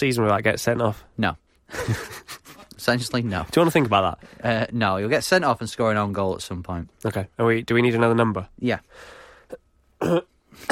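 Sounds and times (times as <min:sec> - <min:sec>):
speech: 0:00.0 - 0:10.7
person coughing harshly: 0:10.0 - 0:10.7.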